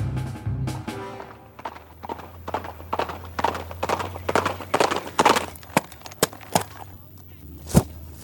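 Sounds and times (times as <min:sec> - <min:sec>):
hooves of a tamed mustang carrying its rider trotting: 0:00.7 - 0:07.3.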